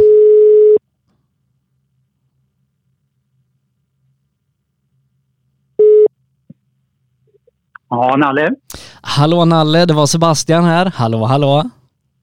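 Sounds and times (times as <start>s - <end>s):
telephone ringback tone while placing a call: 0.0s - 0.8s, 5.8s - 6.1s
speech: 7.9s - 11.8s.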